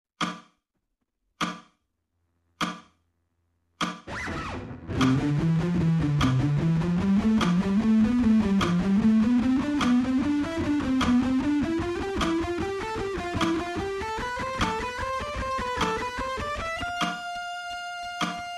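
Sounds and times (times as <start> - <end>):
slow alternate picking: 4.1 - 18.5.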